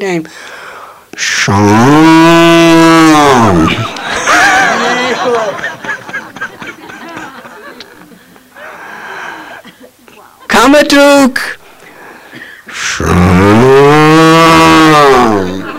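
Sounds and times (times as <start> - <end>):
speech: 0.0 - 0.5, 1.1 - 4.0, 10.7 - 11.6, 12.8 - 15.5
cow mooing: 1.6 - 3.6, 13.0 - 15.6
laughter: 3.5 - 8.8, 15.4 - 15.7.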